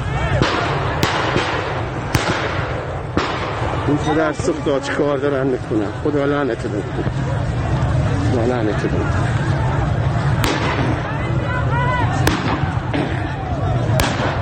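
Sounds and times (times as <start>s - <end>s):
crowd noise and raised voices: 0.0s - 14.3s
shotgun pellet gunfire at protesters: 0.4s - 3.9s, 10.4s - 11.0s, 12.3s - 13.2s, 14.0s - 14.3s
speech: 3.9s - 7.6s, 8.4s - 9.5s.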